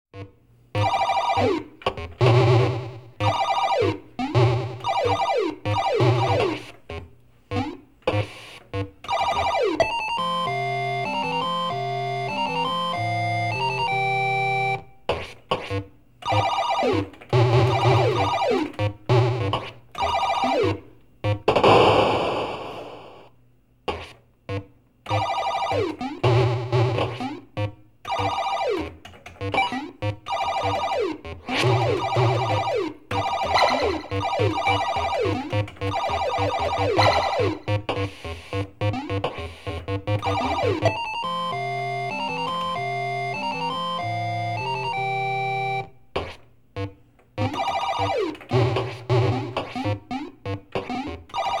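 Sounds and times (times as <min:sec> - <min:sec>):
video game general atmosphere: 0:00.2 - 0:51.5.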